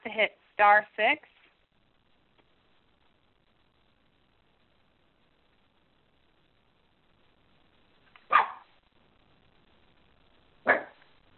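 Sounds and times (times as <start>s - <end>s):
quiet conference call line noise: 0.0s - 11.3s
speech: 0.2s - 1.4s
dog barking on a conference call: 8.3s - 8.7s, 10.6s - 11.0s.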